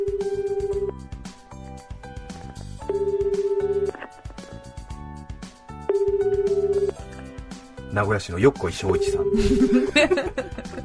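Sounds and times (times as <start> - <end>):
ringback tone from a call to a mobile phone: 0.0 - 0.9, 2.8 - 4.0, 5.8 - 7.0, 8.8 - 9.9
soft music: 0.0 - 10.8
speech: 8.0 - 10.6
laughter: 9.3 - 10.8.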